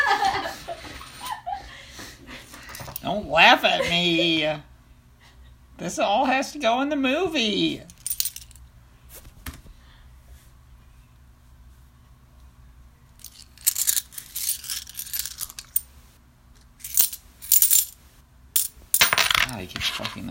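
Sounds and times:
laughter: 0.0s - 2.6s
speech: 3.1s - 4.7s, 5.8s - 7.9s
coins clinking and jingling: 7.8s - 8.6s, 13.2s - 15.9s, 16.7s - 18.0s, 18.6s - 20.2s.

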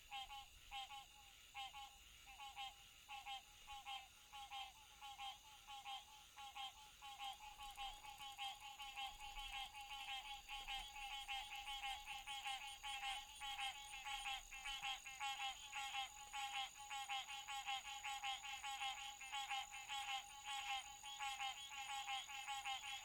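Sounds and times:
frog chorus of quick rattling croaks: 0.1s - 23.0s.

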